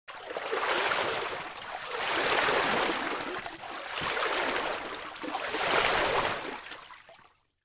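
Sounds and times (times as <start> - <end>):
person swimming breaststroke in a pool: 0.1 - 7.1.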